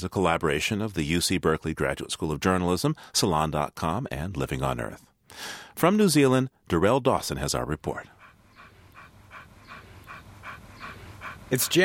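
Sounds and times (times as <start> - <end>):
speech: 0.0 - 8.2, 11.5 - 11.8
frisky white dog panting while running along a dirt path beside a stream: 7.8 - 11.8.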